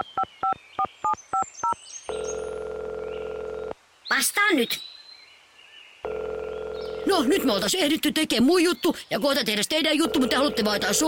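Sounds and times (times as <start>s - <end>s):
telephone keypad dialing tones: 1.6s - 3.7s, 6.1s - 7.1s, 10.0s - 11.0s
steady continuous telephone line tone: 2.1s - 3.8s, 6.1s - 7.4s, 10.0s - 11.0s
speech: 4.2s - 4.9s, 7.2s - 11.0s.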